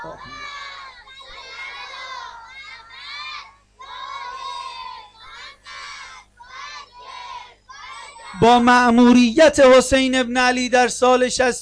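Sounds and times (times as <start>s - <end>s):
speech: 0.0s - 0.6s, 8.4s - 11.6s
children chanting a salawat prayer in unison: 0.0s - 8.4s.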